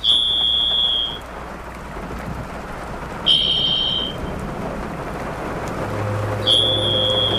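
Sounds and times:
varied thrush eerie whistled song: 0.0s - 1.2s, 3.3s - 4.3s, 6.4s - 7.3s
steady rain-like hiss: 0.0s - 7.3s.

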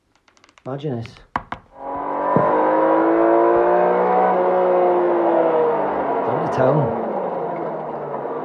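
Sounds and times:
speech: 0.7s - 1.3s, 6.6s - 7.0s
Lamborghini sports car engine revving: 1.7s - 8.4s.

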